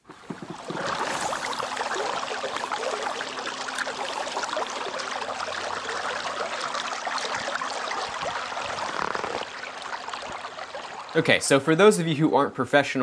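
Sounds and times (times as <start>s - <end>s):
trolling motor whirring pushing a fishing boat: 0.0s - 6.5s
water rushing and churning: 0.0s - 11.2s
speech: 11.2s - 13.0s.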